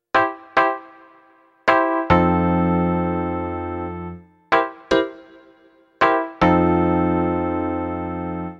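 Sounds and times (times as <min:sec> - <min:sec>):
off beat jazz music: 0:00.2 - 0:08.5.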